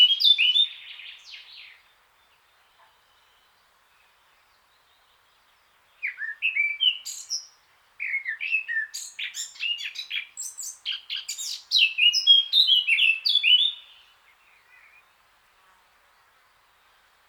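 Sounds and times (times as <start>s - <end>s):
Eurasian blackcap Sylvia atricapilla singing: 0.0s - 1.8s, 6.0s - 15.1s.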